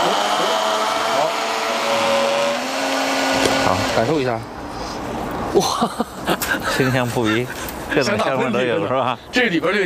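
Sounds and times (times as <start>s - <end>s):
kitchen blender juicing coriander, celery, onion, garlic and other vegetables: 0.0s - 4.3s
speech: 4.0s - 4.6s, 5.5s - 9.8s
laughter: 5.6s - 9.0s.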